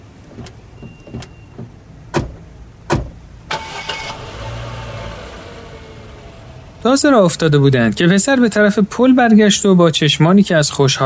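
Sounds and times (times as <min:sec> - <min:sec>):
car engine cranking, starting and running as the car pulls away: 0:00.0 - 0:08.5
car doors of a large stylish car thumping shut: 0:00.2 - 0:03.2
speech: 0:06.8 - 0:11.0.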